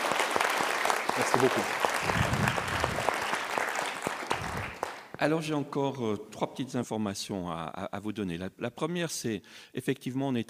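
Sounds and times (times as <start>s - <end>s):
audience clapping for a professor at the end of a lecture: 0.0s - 5.2s
speech: 1.2s - 2.6s, 5.2s - 10.4s.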